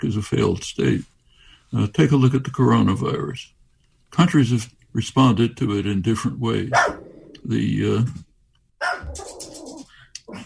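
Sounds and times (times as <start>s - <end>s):
speech: 0.0s - 1.1s, 1.7s - 9.5s
dog barking: 6.7s - 7.2s, 8.8s - 9.8s.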